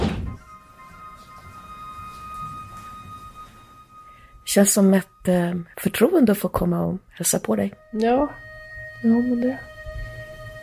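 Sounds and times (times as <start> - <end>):
door in a home shutting: 0.0 - 0.5
faint steady ringing tone: 0.0 - 10.6
speech: 4.5 - 8.4, 9.0 - 9.7.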